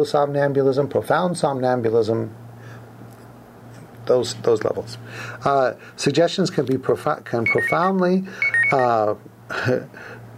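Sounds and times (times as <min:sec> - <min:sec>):
speech: 0:00.0 - 0:02.4, 0:04.1 - 0:10.2
low steady hum: 0:00.0 - 0:10.3
short electronic tone chime: 0:07.5 - 0:08.9.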